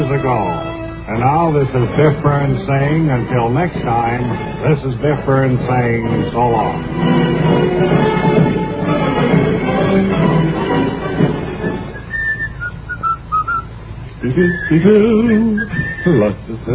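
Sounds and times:
speech: 0.0 - 8.6, 14.2 - 16.7
dense busy sound: 0.0 - 16.7
person whistling a lively march tune: 11.8 - 13.7, 14.3 - 16.4.

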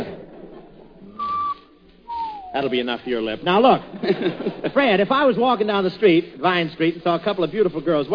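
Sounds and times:
noise: 0.0 - 8.1
person whistling in reply: 1.1 - 2.9
speech: 2.5 - 8.1
laughter: 3.8 - 5.1.

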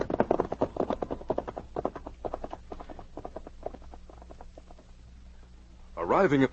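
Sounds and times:
horses' hooves trotting on hard ground: 0.0 - 5.0.

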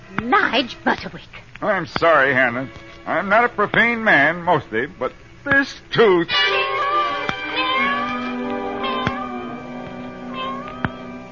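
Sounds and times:
speech: 0.3 - 6.8
cat meowing: 6.4 - 9.6.

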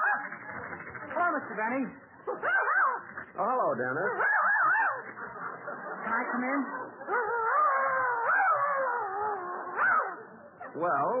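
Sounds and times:
speech: 1.4 - 4.4, 6.1 - 7.4, 10.8 - 11.1
dog howling: 4.1 - 5.0, 7.1 - 10.8
laughter: 5.0 - 7.2.

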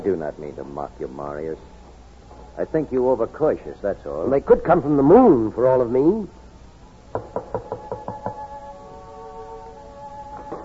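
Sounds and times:
speech: 0.0 - 1.8, 2.6 - 6.4, 7.1 - 7.4
firm knocks on a wooden door: 7.1 - 8.4.

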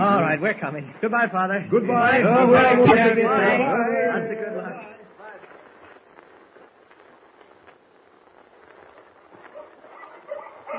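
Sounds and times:
speech: 0.4 - 4.9
puppies barking and yipping: 9.4 - 10.7.

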